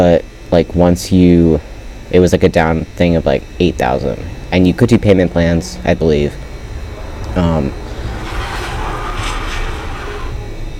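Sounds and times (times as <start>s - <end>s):
speech: 0.0s - 6.4s, 7.4s - 7.8s
car passing outside: 3.4s - 10.7s.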